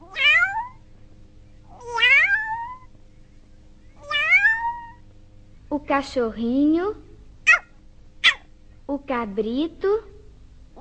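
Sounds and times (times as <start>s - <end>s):
kitten meowing: 0.0s - 0.8s, 1.7s - 2.9s, 4.0s - 5.0s, 7.5s - 8.4s
speech: 5.8s - 7.1s, 9.0s - 10.1s.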